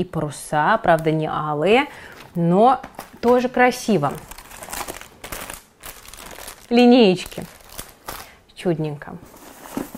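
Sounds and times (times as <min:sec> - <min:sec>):
speech: 0:00.0 - 0:04.3, 0:06.7 - 0:07.6, 0:08.6 - 0:09.4
plastic packet containing a pencil case crinkling while being unwrapped: 0:02.9 - 0:08.4.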